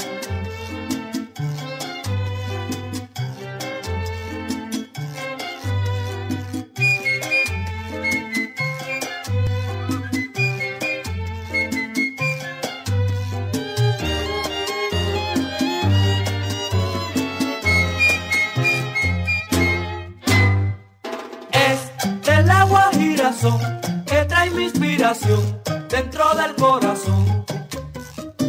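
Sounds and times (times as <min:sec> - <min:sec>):
charanga ensemble playing a lively Cuban son: 0:00.0 - 0:28.4
syncopated percussion: 0:00.0 - 0:28.4
steady bass tumbao: 0:06.8 - 0:20.8, 0:21.6 - 0:28.4.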